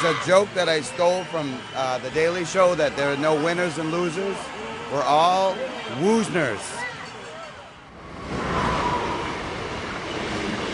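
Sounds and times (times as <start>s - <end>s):
speech: 0.0s - 6.8s
commuter train rumbling on rails: 8.1s - 10.7s.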